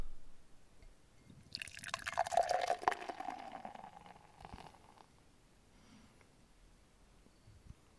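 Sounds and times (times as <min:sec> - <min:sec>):
Mosaic Citra beer pouring: 0:01.5 - 0:05.1.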